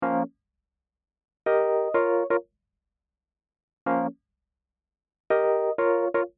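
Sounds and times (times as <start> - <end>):
electric piano: 0.0 - 0.3, 1.5 - 2.4, 3.9 - 4.1, 5.3 - 6.3.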